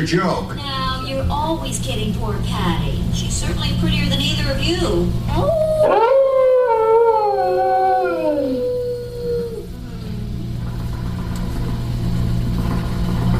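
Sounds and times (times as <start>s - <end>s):
speech: 0.0s - 6.2s
old 1920s exercise machine running with a mechanical rumble: 0.0s - 13.3s
long wavering descending howl: 5.3s - 10.4s.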